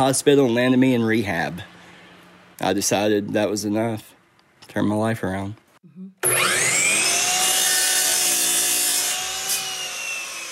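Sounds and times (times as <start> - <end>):
speech: 0.0 - 1.7, 2.6 - 4.1, 4.7 - 6.5
power chop saw cutting wood: 6.2 - 10.4.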